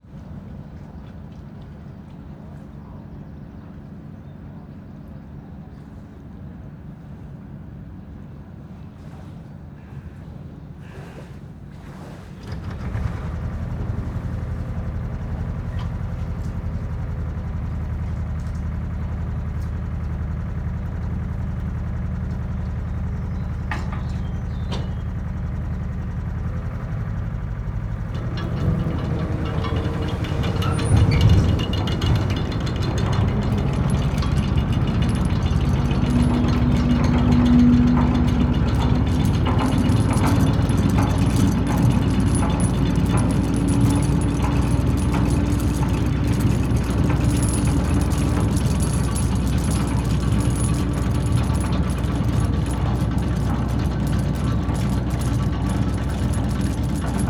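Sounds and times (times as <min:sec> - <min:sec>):
chain ferry engine starting and departing: 0:11.8 - 0:57.2
chain ferry chain rattling: 0:12.6 - 0:20.7, 0:26.0 - 0:57.2.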